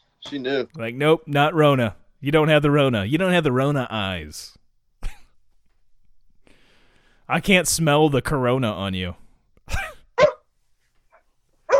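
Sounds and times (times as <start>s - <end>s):
speech: 0.2s - 4.6s, 7.3s - 9.8s
dog barking in short sharp bursts: 10.2s - 10.5s, 11.1s - 11.7s.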